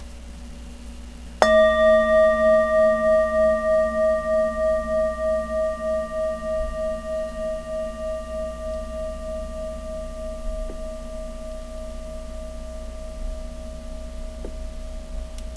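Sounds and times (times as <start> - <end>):
large Tibetan singing bowl ringing: 1.4 - 15.5.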